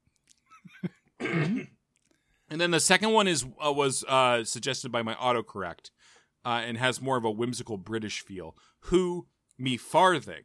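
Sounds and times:
loud cough with a rough voiced tail: 0:00.8 - 0:01.8
small throat-clearing sounds: 0:01.2 - 0:01.8
breaths: 0:02.0 - 0:02.5, 0:05.9 - 0:06.4, 0:08.6 - 0:08.9
speech: 0:02.5 - 0:10.4.

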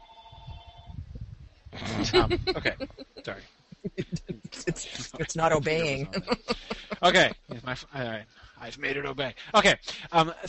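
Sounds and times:
phone ringing with a steady electronic tone: 0:00.0 - 0:00.9
low rumble: 0:00.3 - 0:09.8
speech: 0:01.7 - 0:10.4
laughter: 0:01.8 - 0:07.7.

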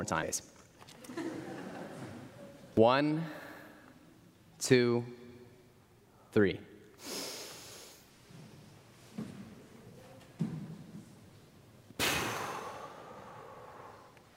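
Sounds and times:
speech: 0:00.0 - 0:00.6, 0:02.8 - 0:03.4, 0:04.6 - 0:05.2, 0:06.3 - 0:07.2
laughter: 0:00.9 - 0:02.7
deep breathing exercise inhale and exhale: 0:03.2 - 0:04.2, 0:07.0 - 0:08.1, 0:12.0 - 0:14.3.

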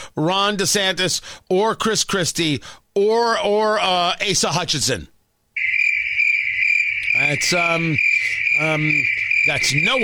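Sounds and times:
speech: 0:00.2 - 0:05.7, 0:07.2 - 0:10.0
crickets chirping as a sound effect: 0:05.6 - 0:10.0.

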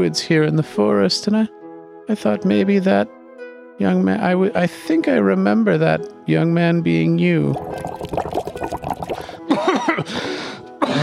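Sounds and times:
speech: 0:00.0 - 0:03.2, 0:03.8 - 0:08.5
water pouring into a container: 0:07.5 - 0:09.5.

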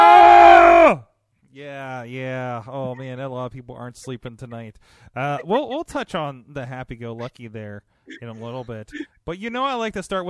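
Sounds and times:
two hosts screaming together: 0:00.0 - 0:01.0
speech: 0:02.6 - 0:10.2.

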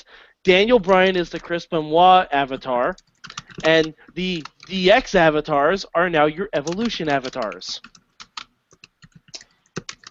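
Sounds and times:
speech: 0:00.0 - 0:08.0
computer keyboard typing: 0:00.6 - 0:01.6, 0:02.4 - 0:05.3, 0:06.5 - 0:10.1.

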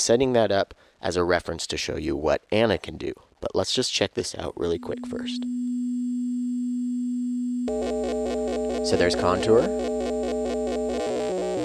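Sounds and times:
speech: 0:00.0 - 0:05.7, 0:07.7 - 0:09.9
modular synthesizer drone on a single low pitch: 0:04.7 - 0:11.6.

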